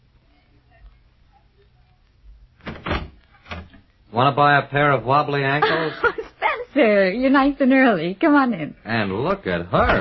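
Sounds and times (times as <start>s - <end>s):
front door opening with clattering and thunk: 2.6s - 3.8s
speech: 4.2s - 6.2s, 6.8s - 10.0s
laughter: 5.5s - 6.6s.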